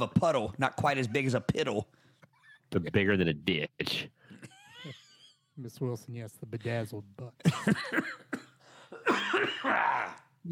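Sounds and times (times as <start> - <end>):
speech: 0.0 - 2.0, 2.7 - 4.2, 5.6 - 8.4, 9.0 - 10.5
person coughing: 7.5 - 10.2.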